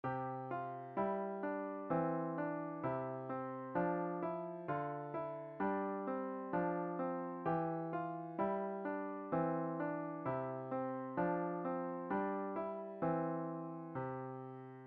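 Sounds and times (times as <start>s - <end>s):
piano coordination exercises: 0.0s - 14.8s.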